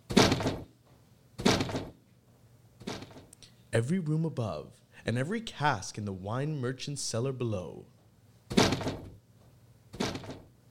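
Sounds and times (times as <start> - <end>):
door slamming shut with a loud bang: 0.1 - 0.7, 1.4 - 2.0, 8.5 - 9.2, 10.0 - 10.5
speech: 3.7 - 8.0.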